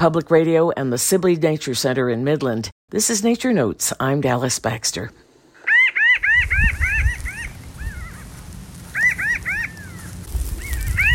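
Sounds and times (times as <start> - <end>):
speech: 0.0 - 5.2
pinyon jays calling: 5.6 - 11.1
low rumble: 6.7 - 11.1.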